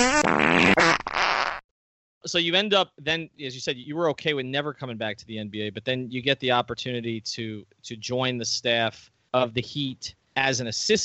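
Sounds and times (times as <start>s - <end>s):
fart noise: 0.0s - 1.6s
speech: 2.3s - 11.0s.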